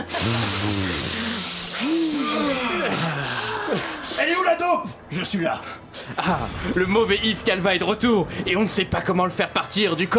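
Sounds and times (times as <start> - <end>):
several people sniffing and snorting loudly: 0.0 - 4.1
speech: 0.2 - 0.5, 3.7 - 10.1.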